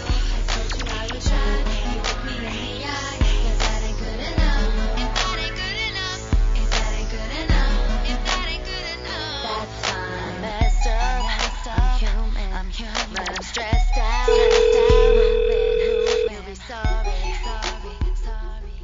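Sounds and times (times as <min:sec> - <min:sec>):
music with steady beat and layered vocals: 0:00.0 - 0:18.8
electronic telephone tone of an incoming call: 0:14.3 - 0:16.4.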